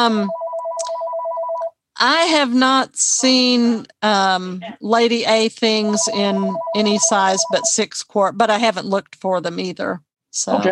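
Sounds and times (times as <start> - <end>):
speech: 0.0 - 0.4, 2.0 - 10.6
phone ringing with a warbling electronic trill: 0.0 - 1.7, 5.8 - 7.8.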